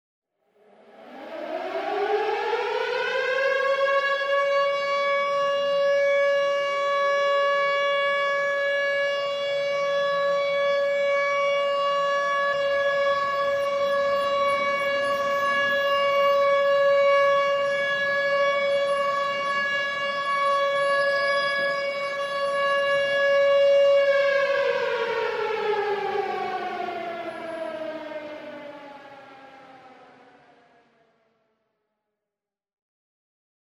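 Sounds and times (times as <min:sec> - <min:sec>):
air raid all clear siren: 0:00.4 - 0:31.7.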